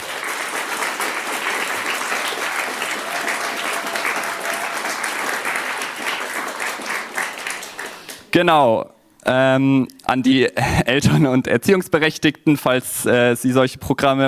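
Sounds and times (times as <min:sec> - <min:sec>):
crowd applause: 0:00.0 - 0:08.3
speech: 0:08.4 - 0:14.2.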